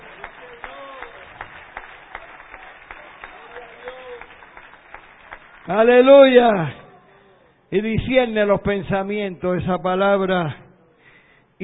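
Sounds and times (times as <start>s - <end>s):
audience applauding: 0.0s - 6.8s
speech: 5.7s - 6.8s, 7.7s - 10.6s.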